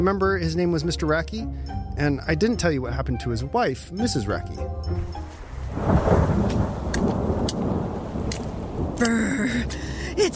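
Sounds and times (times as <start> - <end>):
speech: 0.0 - 6.7, 9.0 - 10.3
low rumble of thunder: 5.0 - 10.3
steady cold rain pouring outdoors near a camp: 5.0 - 10.3.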